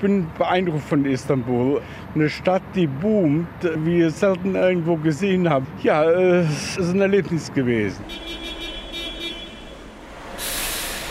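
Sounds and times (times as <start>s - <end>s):
speech: 0.0s - 8.4s
long-distance bus engine rumble arriving at Breslauer Platz in Cologne: 7.6s - 11.1s
broad hiss of arriving long-distance bus: 10.1s - 11.1s.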